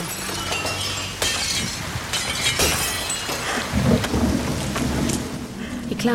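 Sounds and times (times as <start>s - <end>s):
glass window crash and shattering: 0.0s - 3.7s
heavy rain: 0.0s - 6.1s
rumbling thunder: 3.6s - 6.0s.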